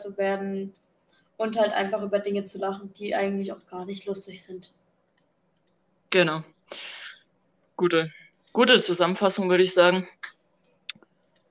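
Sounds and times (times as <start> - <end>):
speech: 0.0 - 0.8, 1.4 - 4.8, 6.1 - 7.0, 7.8 - 10.2
computer mouse clicking: 0.4 - 1.3, 5.0 - 5.8, 8.2 - 8.6, 10.2 - 11.4.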